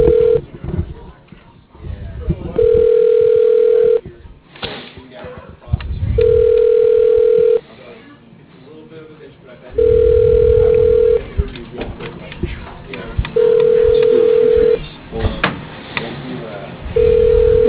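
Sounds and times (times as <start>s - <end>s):
unanswered outgoing phone call ringback tone: 0.0s - 0.4s, 2.6s - 4.0s, 6.2s - 7.6s, 9.8s - 11.2s, 13.4s - 14.8s, 17.0s - 17.6s
voices: 0.0s - 17.6s.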